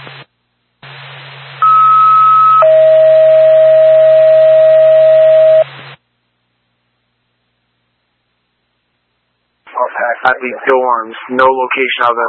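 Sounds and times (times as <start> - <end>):
two-tone emergency dispatch pager alert over a radio channel: 1.6 - 5.6
speech: 10.2 - 12.2.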